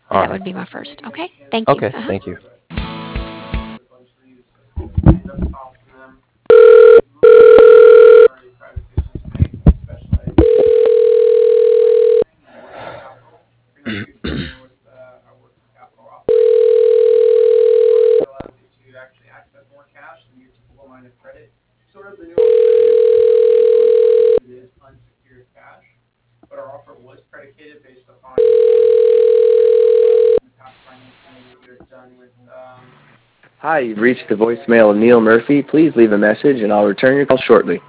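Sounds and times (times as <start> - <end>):
speech: 0.1 - 2.5, 33.9 - 37.8
short telephone tone bursts during a call transfer: 6.5 - 8.3, 10.4 - 12.2, 16.3 - 18.2, 22.4 - 24.4, 28.4 - 30.4.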